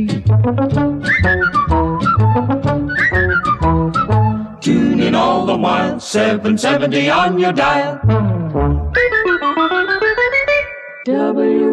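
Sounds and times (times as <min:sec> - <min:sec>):
speech: 0:00.0 - 0:01.5, 0:04.7 - 0:08.3
full bouncy instrumental backing: 0:00.0 - 0:11.1
whistled radio station jingle melody: 0:01.0 - 0:04.6, 0:08.8 - 0:11.4.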